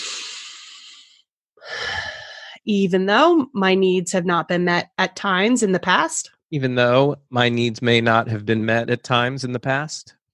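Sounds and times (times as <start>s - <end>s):
deep breath in and out: 0.0s - 2.6s
speech: 2.6s - 10.2s.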